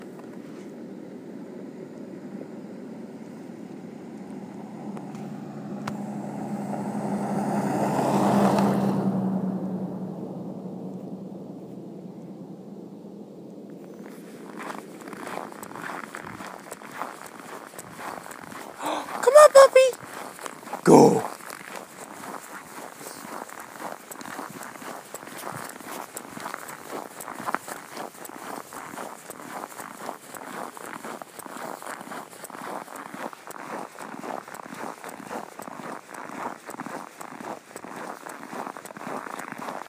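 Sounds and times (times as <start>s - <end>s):
car: 0.0s - 39.8s
footsteps walking: 13.8s - 39.8s.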